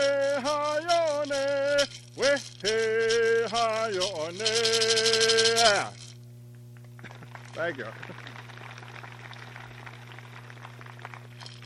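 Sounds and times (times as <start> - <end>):
coconut shell rattle with seeds or pebbles shaken as accompaniment for Creek songs: 0.0 - 6.2, 7.2 - 7.9, 10.8 - 11.6
low electrical hum: 0.0 - 11.6
speech: 7.6 - 8.5.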